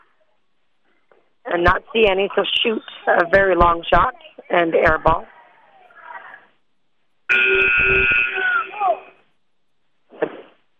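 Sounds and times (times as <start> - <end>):
speech: 1.5 - 5.3, 7.3 - 8.2
basketball substitution buzzer: 7.3 - 8.8.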